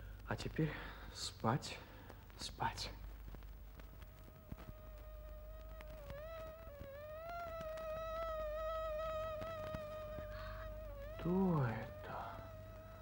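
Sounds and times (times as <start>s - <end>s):
speech: 0.3s - 3.0s, 11.2s - 12.0s
faint clicks: 3.0s - 10.5s
mosquitoes whining: 4.0s - 13.0s.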